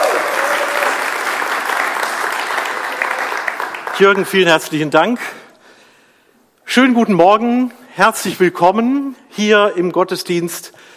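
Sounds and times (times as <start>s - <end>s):
audience applause: 0.0s - 4.7s
speech: 4.0s - 5.4s, 6.7s - 10.9s.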